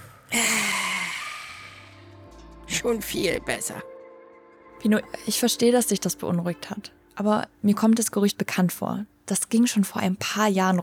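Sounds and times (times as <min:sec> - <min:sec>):
long audible voiced deep exhale: 0:00.0 - 0:02.1
speech: 0:02.8 - 0:03.9, 0:04.8 - 0:10.8.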